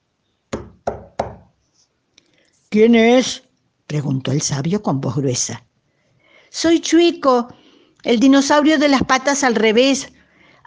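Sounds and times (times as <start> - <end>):
firm knocks on a cave door: 0.5 - 1.5
speech: 2.7 - 5.7, 6.5 - 10.2.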